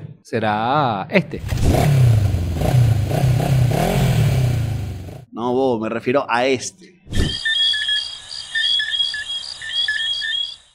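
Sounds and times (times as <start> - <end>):
speech: 0.3 - 3.9, 5.4 - 7.6
night chorus of Antillean coqui frogs in Caracas: 7.2 - 10.7.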